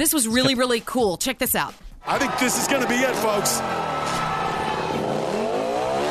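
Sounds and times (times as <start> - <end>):
speech: 0.0 - 3.9
motorcycle engine revving before a stunt jump in Las Vegas: 3.2 - 6.1.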